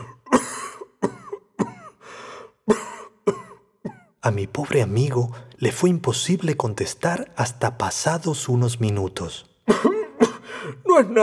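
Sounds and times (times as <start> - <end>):
person coughing in a harsh fit in a cave: 0.0 - 2.0, 2.7 - 4.2, 9.7 - 10.8
speech: 4.2 - 10.0, 11.0 - 11.2.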